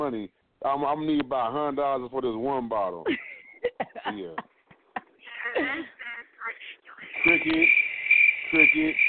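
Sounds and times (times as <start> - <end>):
speech: 0.1 - 3.3, 4.1 - 4.5, 7.2 - 7.8, 8.5 - 9.0
crickets chirping: 7.0 - 9.0.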